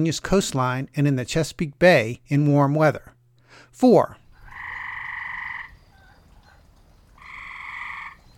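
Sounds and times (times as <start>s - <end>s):
speech: 0.0s - 4.2s
gray tree frog in Virginia trilling: 4.3s - 8.3s.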